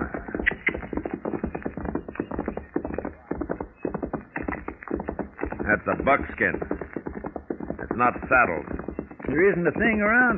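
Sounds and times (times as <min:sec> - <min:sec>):
horse hooves clopping at a walk or trot: 0:00.0 - 0:10.3
speech: 0:05.7 - 0:06.8, 0:07.9 - 0:10.3.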